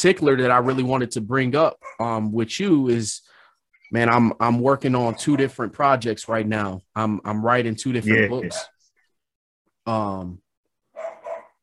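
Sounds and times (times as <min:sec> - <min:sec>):
speech: 0:00.0 - 0:08.8, 0:09.8 - 0:10.4
dog barking: 0:00.6 - 0:00.9, 0:01.8 - 0:02.0, 0:05.0 - 0:05.6, 0:08.4 - 0:08.8, 0:10.9 - 0:11.6.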